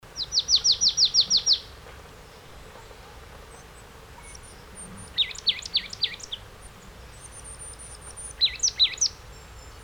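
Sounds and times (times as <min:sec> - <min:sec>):
marsh tit Poecile palustris calling: 0:00.2 - 0:01.7, 0:03.6 - 0:06.5, 0:07.2 - 0:09.8.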